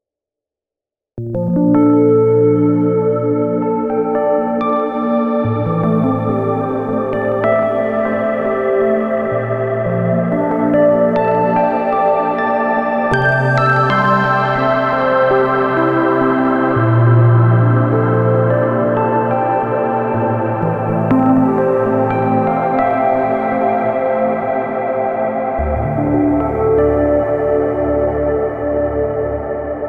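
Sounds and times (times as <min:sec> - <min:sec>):
electric piano ballad: 0:01.2 - 0:29.8.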